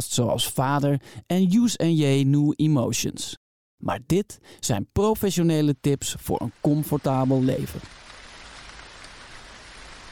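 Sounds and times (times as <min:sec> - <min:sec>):
speech: 0:00.2 - 0:08.0
steady rain pouring down: 0:06.5 - 0:10.1.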